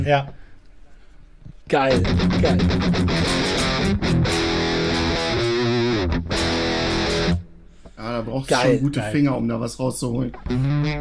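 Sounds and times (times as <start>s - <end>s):
speech: 0.0s - 0.4s, 1.7s - 4.0s, 8.0s - 10.9s
heavily distorted electric guitar chugging rhythmic chords with digital multi-effect tone: 1.9s - 7.5s, 10.3s - 10.9s.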